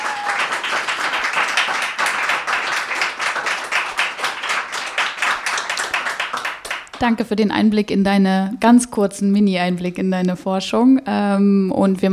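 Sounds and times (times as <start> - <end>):
crowd applauding: 0.0 - 7.0
speech: 7.0 - 12.1.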